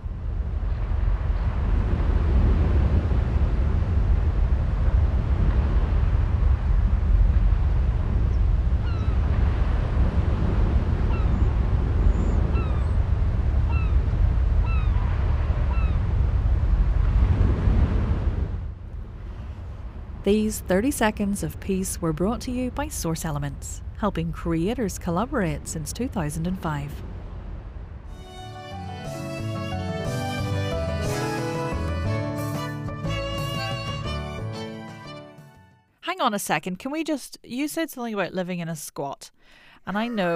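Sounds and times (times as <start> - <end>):
sea wind roaring: 0.0 - 28.6
ocean waves rolling: 0.0 - 35.6
faint high bird cries: 14.6 - 15.1
speech: 20.3 - 27.1, 36.2 - 40.3.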